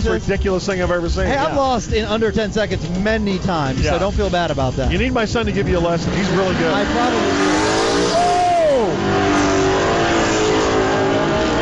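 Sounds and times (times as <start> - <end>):
speech: 0.0 - 7.6
steady loud engine drone: 4.8 - 11.6
racing car roaring past at high speed: 5.9 - 11.6.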